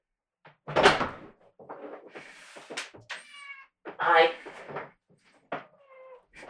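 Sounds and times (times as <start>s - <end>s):
door opened with a sharp knock and rattle: 0.5s - 1.7s
cat meowing insistently with drawn-out cries: 3.1s - 3.8s, 5.6s - 6.4s
speech: 4.0s - 4.4s.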